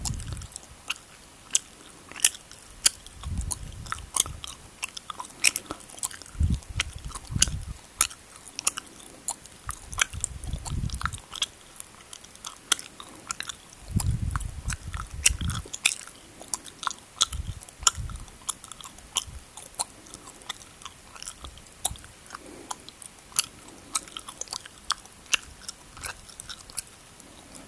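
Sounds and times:
soft low thumps of the jaw: 0.0s - 0.5s, 2.8s - 4.6s, 5.4s - 7.8s, 9.7s - 11.5s, 13.8s - 15.8s, 17.2s - 18.4s
chewing gum with wet clicks and smacks: 0.0s - 27.6s.

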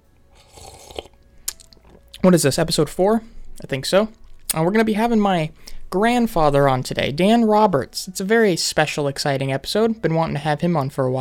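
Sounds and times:
slurping sip of coffee: 0.4s - 2.0s
speech: 2.2s - 11.1s.

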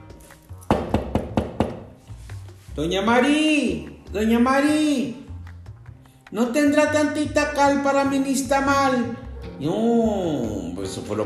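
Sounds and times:
knocking on a door: 0.7s - 1.9s
speech: 2.8s - 5.2s, 6.3s - 11.2s.

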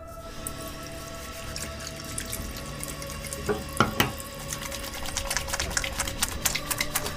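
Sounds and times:
running water: 0.2s - 7.1s.

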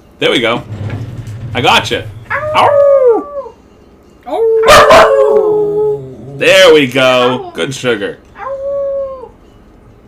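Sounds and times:
speech: 0.2s - 0.8s, 1.5s - 2.8s, 6.4s - 8.2s
female dog sharp yelping barks: 2.3s - 3.5s, 4.6s - 5.5s
female dog howling: 2.3s - 3.6s, 4.3s - 6.4s, 8.4s - 9.4s.

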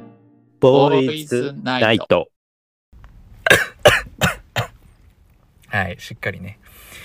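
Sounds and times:
speech: 0.6s - 2.3s, 5.7s - 7.0s
person coughing after choking on bitter coffee: 3.5s - 4.8s.

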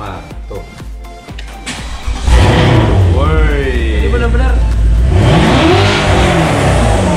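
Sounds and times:
600-horsepower Porsche turbo sports car engine starting and revving: 1.8s - 7.1s.

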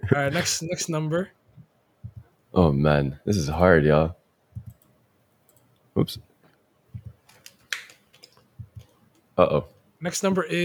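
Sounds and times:
speech: 0.1s - 1.4s, 2.6s - 4.2s, 6.0s - 6.3s, 9.4s - 10.6s
typing on a computer keyboard: 7.0s - 9.0s.

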